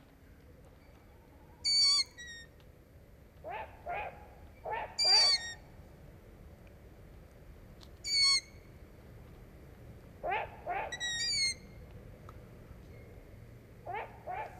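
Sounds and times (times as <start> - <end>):
low steady rumble: 0.0 - 14.5
owl giving squeaky creaking calls: 1.6 - 2.5, 4.7 - 5.6, 8.0 - 8.6, 10.2 - 11.7.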